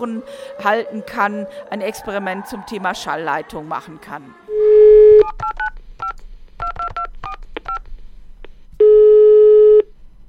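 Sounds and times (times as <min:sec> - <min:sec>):
speech: 0:00.0 - 0:04.5
long loud steady telephone tone: 0:04.5 - 0:05.3, 0:08.8 - 0:09.9
push-button telephone dialing beeps: 0:04.8 - 0:07.8.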